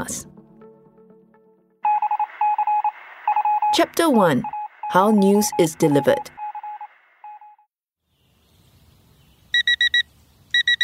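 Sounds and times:
speech: 0.0s - 0.3s, 3.8s - 6.4s
smartphone alarm beeping: 1.8s - 7.7s, 9.6s - 10.8s.

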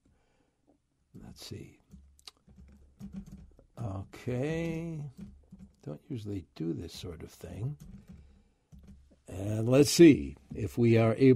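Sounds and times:
speech: 1.4s - 1.8s, 3.1s - 7.9s, 9.3s - 11.3s
typing on a computer keyboard: 1.8s - 5.9s, 7.7s - 9.2s.

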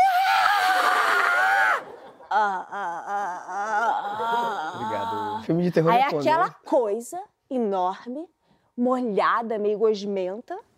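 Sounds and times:
person screaming in fright: 0.0s - 5.5s
speech: 5.5s - 10.7s.

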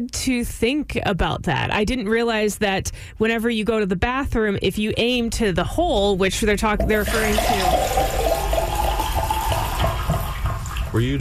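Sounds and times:
speech: 0.0s - 8.2s, 11.0s - 11.1s
water running into a drinking water container: 6.6s - 11.1s.

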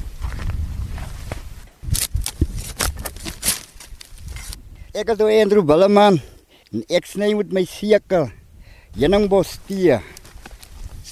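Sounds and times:
footsteps crunching up a steep slope where honeybush tea is cut: 0.0s - 4.6s, 9.5s - 11.1s
brushy scraping between steps: 1.1s - 4.6s
speech: 5.0s - 8.4s, 9.0s - 10.2s.

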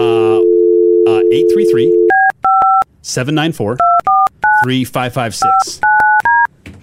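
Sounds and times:
telephone keypad dialing beeps: 0.7s - 2.8s, 3.8s - 4.7s, 5.4s - 6.5s
speech: 1.3s - 2.0s, 3.1s - 4.0s, 4.6s - 5.9s.

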